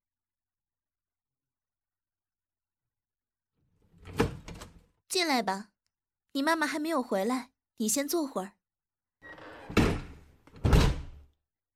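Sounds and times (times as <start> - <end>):
speech: 5.1 - 5.7, 6.3 - 8.6
door closing thud: 9.5 - 11.2.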